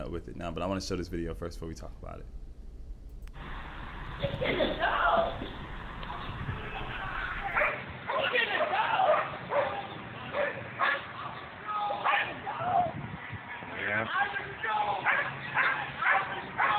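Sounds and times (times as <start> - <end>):
speech: 0.1 - 2.4
voices shouting and talking: 4.2 - 16.7
police dogs barking and yelping during an attack: 6.8 - 13.7, 14.9 - 16.7.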